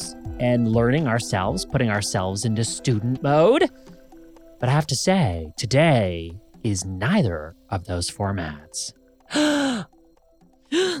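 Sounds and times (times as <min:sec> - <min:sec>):
speech: 0:00.4 - 0:04.0, 0:04.6 - 0:09.9
person gasping: 0:09.3 - 0:09.9, 0:10.7 - 0:10.9.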